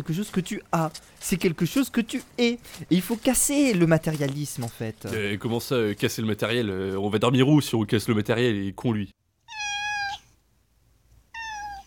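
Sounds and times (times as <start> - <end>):
speech: 0.0 - 9.2
cat meowing: 9.5 - 10.3, 11.3 - 11.8.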